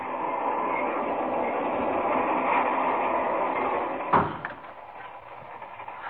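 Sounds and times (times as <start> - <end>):
fast passenger train rolling along the rails: 0.0 - 6.0
speech: 4.1 - 4.4
sharp clunk: 4.1 - 4.7.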